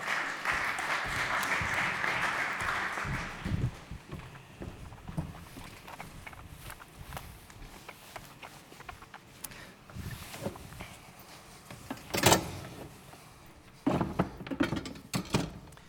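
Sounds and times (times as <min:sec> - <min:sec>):
scattered claps: 0:00.0 - 0:03.9
audience applause: 0:00.0 - 0:04.2
knocks and shuffles: 0:00.4 - 0:15.8.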